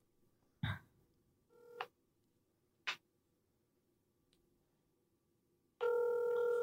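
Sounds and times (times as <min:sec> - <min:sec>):
outgoing call ringing tone: 0:01.5 - 0:01.9, 0:05.8 - 0:06.6.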